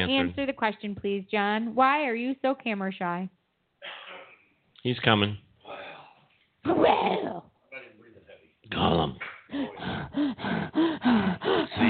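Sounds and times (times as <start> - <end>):
speech: 0.1 - 4.0, 4.8 - 5.4, 6.6 - 7.4
person faking heavy breathing with voiced grunting: 9.5 - 11.8.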